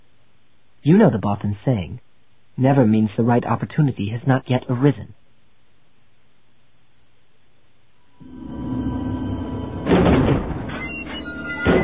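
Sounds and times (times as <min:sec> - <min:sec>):
speech: 0:00.8 - 0:05.2
heavy double gate doors dragged open: 0:08.2 - 0:11.8
heavy clunk of gate doors: 0:09.8 - 0:11.8.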